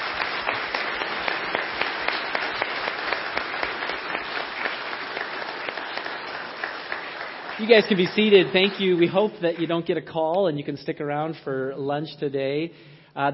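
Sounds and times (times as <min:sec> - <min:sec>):
crowd applauding: 0:00.0 - 0:10.4
speech: 0:07.6 - 0:13.3.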